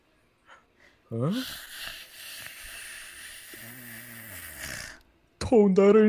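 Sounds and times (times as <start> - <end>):
person with a cold breathing heavily on someone's neck during a ride: 0.4 - 5.0
speech: 1.1 - 1.7, 5.5 - 6.0
voice murmuring: 1.1 - 5.0.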